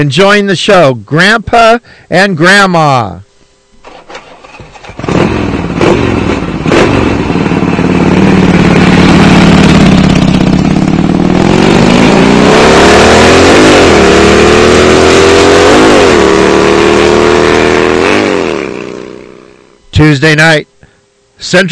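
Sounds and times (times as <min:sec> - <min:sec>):
speech: 0:00.0 - 0:03.3, 0:20.0 - 0:20.7, 0:21.4 - 0:21.7
motorcycle engine idling and revving: 0:03.8 - 0:19.8.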